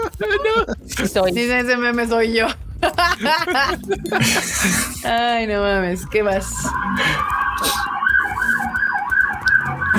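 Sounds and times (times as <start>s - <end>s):
laughter: 0.0s - 1.1s, 2.4s - 5.0s
speech: 0.2s - 7.9s
ambulance siren wailing: 5.9s - 9.9s.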